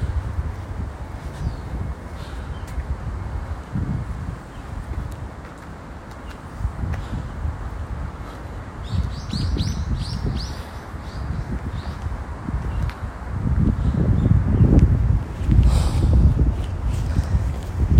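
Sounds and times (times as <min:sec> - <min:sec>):
wind: 0:00.0 - 0:17.9
birds chirping outdoors: 0:01.3 - 0:02.8, 0:08.2 - 0:13.0.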